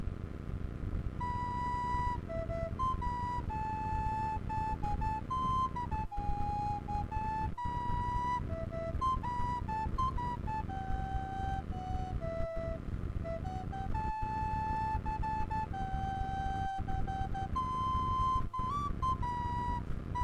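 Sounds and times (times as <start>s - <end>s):
recorder: 0.0s - 20.2s.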